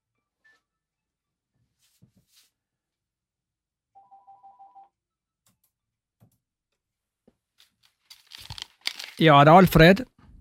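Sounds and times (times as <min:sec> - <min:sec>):
telephone ringing in a warbling pulsed burst: 0:04.0 - 0:04.9
scattered clicks, knocks and handling noises: 0:07.3 - 0:09.8
speech: 0:09.2 - 0:10.1.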